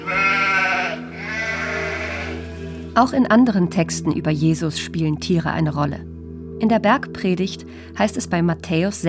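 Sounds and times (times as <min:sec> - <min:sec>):
sheep bleating: 0:00.0 - 0:02.6
speech: 0:03.0 - 0:09.0.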